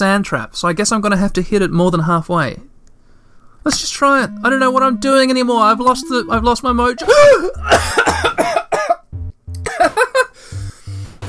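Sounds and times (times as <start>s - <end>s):
speech: 0.0s - 2.7s, 3.6s - 8.6s
person coughing after choking on a hard inhaled breath: 7.0s - 9.0s.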